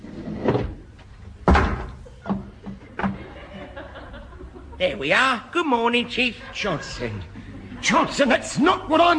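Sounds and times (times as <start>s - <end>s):
door forced open against stacked blankets: 0.0s - 3.2s
laughter: 2.0s - 5.2s, 5.8s - 8.5s
speech: 4.8s - 9.1s.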